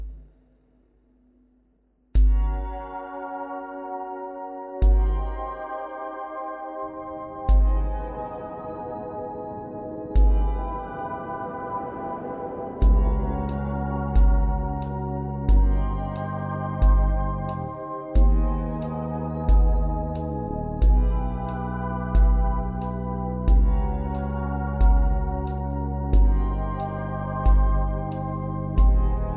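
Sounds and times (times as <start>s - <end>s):
distortion: 2.2s - 3.6s, 4.8s - 6.0s, 7.2s - 8.6s, 10.2s - 29.3s.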